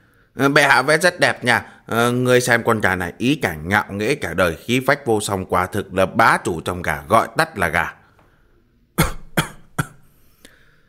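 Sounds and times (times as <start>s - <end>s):
speech: 0.4s - 8.0s
old palace eunuch giving dry harsh coughs: 9.0s - 10.1s.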